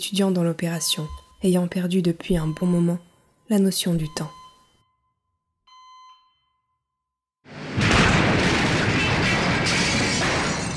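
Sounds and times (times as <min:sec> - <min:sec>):
speech: 0:00.0 - 0:04.4
short electronic beep: 0:00.7 - 0:05.0
loud explosion roaring as a sustained rumble: 0:07.5 - 0:10.7.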